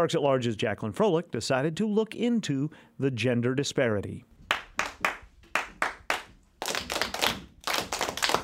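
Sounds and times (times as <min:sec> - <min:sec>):
speech: 0:00.0 - 0:04.3
classroom of children clapping in a rhythmic pattern: 0:04.5 - 0:08.4.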